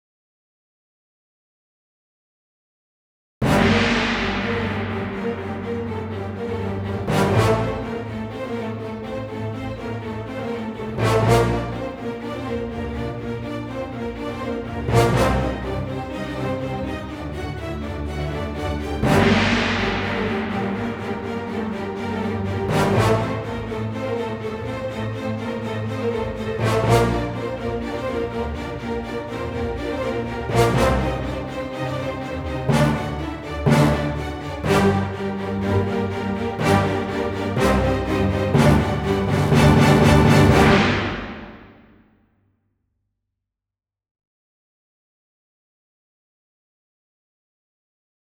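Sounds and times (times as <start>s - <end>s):
brass: 3.4s - 42.0s
strings: 3.4s - 42.0s.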